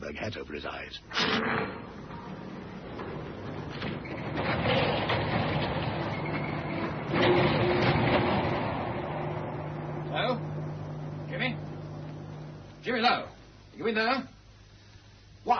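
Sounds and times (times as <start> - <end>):
speech: 0.1 - 2.1, 13.0 - 14.4
door being tried and forced, rattling and scraping: 1.2 - 10.6.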